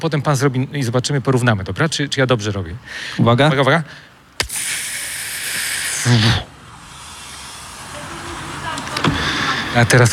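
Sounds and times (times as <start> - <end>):
speech: 0.0 - 4.6, 6.0 - 6.5, 9.8 - 10.1
voice imitating a pneumatic bus door opening: 4.4 - 9.6.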